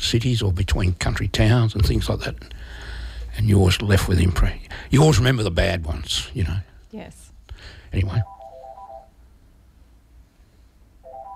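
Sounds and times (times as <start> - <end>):
speech: 0.1 - 8.4
telephone ringing in electronic trilling bursts: 8.2 - 9.1, 11.0 - 11.3.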